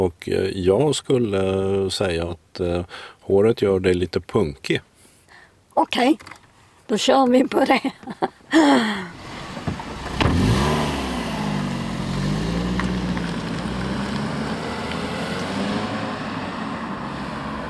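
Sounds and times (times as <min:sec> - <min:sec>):
speech: 0:00.0 - 0:04.9, 0:05.8 - 0:09.2
car engine revving as car sets off: 0:09.1 - 0:17.6.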